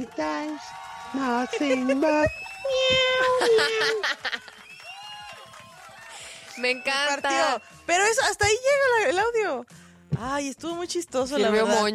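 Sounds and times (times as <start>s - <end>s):
speech: 0.0s - 4.6s, 6.6s - 11.9s
laughter: 1.4s - 2.3s, 3.2s - 4.7s
human voice imitating cat meows: 2.7s - 3.8s.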